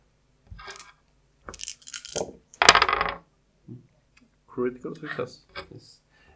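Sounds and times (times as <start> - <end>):
dice clattering on a hard surface: 0.6 - 3.2
speech: 4.6 - 6.0.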